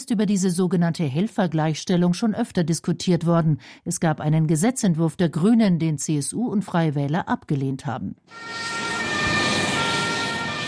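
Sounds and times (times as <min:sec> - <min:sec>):
speech: 0:00.1 - 0:09.1
ambulance siren as the vehicle drives off during an emergency exercise: 0:08.3 - 0:10.6.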